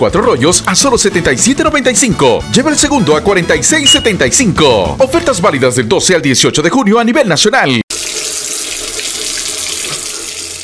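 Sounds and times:
speech: 0.0 - 7.8
water running from a tap: 7.9 - 10.6.

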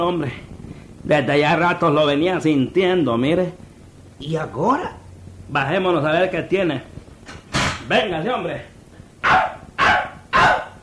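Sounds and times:
speech: 0.0 - 3.6, 4.2 - 6.9, 7.9 - 8.7
dog barking: 9.2 - 10.8.

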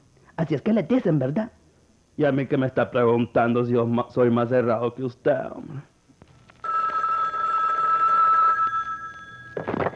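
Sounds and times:
speech: 0.4 - 1.6, 2.2 - 5.9
telephone ringing with a shrill electronic tone: 6.6 - 9.9.

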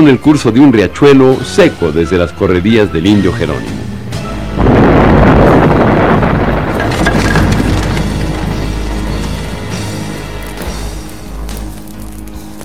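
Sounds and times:
speech: 0.0 - 3.8
small explosion of gasoline and dynamite: 4.6 - 9.3.

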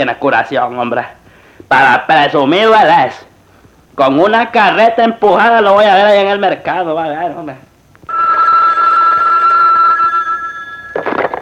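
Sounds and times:
speech: 0.0 - 3.3, 4.0 - 7.7
telephone ringing: 8.1 - 11.4.

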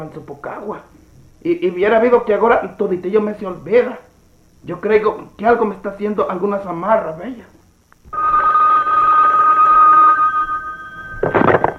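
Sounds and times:
speech: 0.0 - 7.6
telephone ringing with one long steady electronic tone: 8.1 - 11.7.

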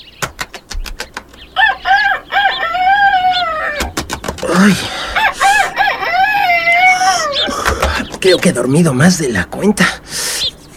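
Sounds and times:
sharp flapping beats: 0.2 - 1.5, 3.6 - 4.6, 7.2 - 8.4
rooster crowing: 1.6 - 4.0, 4.6 - 7.6
speech: 4.6 - 5.0, 8.2 - 10.0.

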